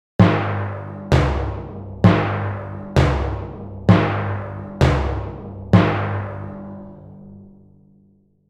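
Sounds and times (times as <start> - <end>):
cartoon timpani drum slow hits: 0.2 - 7.0.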